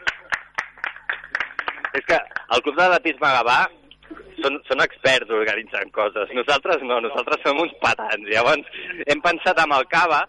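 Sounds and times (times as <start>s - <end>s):
small audience applause: 0.0s - 2.4s
speech: 2.0s - 3.8s, 4.4s - 10.2s.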